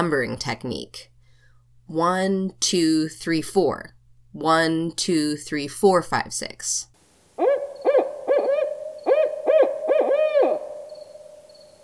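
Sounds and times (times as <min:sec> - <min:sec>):
speech: 0:00.0 - 0:01.1, 0:01.9 - 0:06.9
owl hooting: 0:07.4 - 0:11.8.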